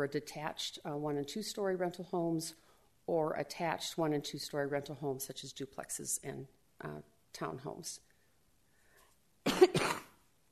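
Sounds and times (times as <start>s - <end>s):
speech: 0.0s - 8.1s
person coughing: 9.4s - 10.2s.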